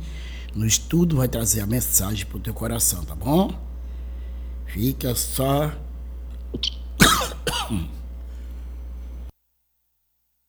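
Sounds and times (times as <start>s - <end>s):
quiet room hum: 0.0s - 10.4s
speech: 0.5s - 3.7s, 4.7s - 5.8s, 6.5s - 6.8s, 7.4s - 8.0s
person clearing throat: 6.6s - 8.0s
person coughing: 6.6s - 8.0s.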